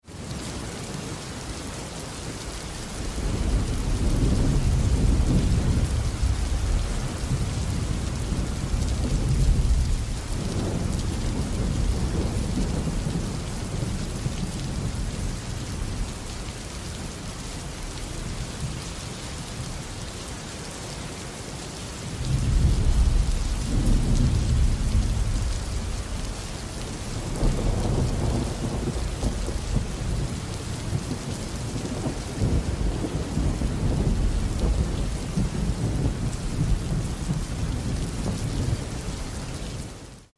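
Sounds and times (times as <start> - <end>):
heavy rain in an urban thunderstorm: 0.0 - 40.3
urban thunderstorm thunder: 3.2 - 15.0, 22.2 - 26.4, 27.2 - 39.0.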